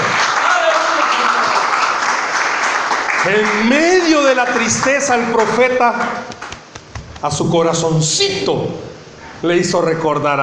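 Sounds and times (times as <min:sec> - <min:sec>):
crowd applauding: 0:00.0 - 0:06.8
speech: 0:03.2 - 0:06.3, 0:07.2 - 0:10.4.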